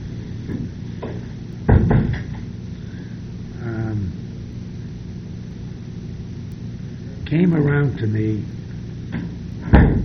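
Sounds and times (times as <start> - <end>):
door swinging shut with a thud and rattle: 1.7 - 2.4, 9.2 - 10.0
speech: 7.3 - 8.6.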